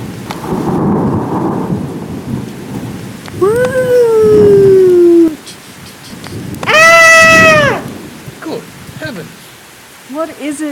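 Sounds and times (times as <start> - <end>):
rolling thunder during a stormy night: 0.0 - 5.4, 6.2 - 9.4
heavy rain: 0.0 - 10.7
high rising wail: 3.4 - 5.4, 6.6 - 7.9
speech: 10.3 - 10.7.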